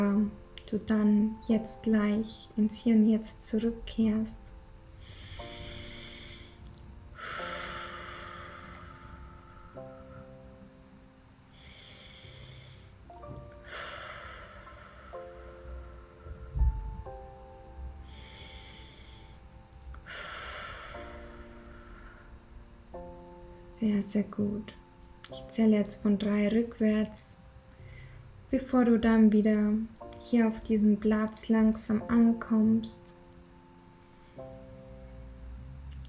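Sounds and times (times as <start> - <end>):
speech: 0.0 - 4.5, 24.1 - 24.8, 25.5 - 27.4, 28.5 - 33.1
quiet sustained music: 0.0 - 36.0
slow deep breathing during guided relaxation: 5.0 - 10.7, 11.5 - 23.4, 27.7 - 28.4.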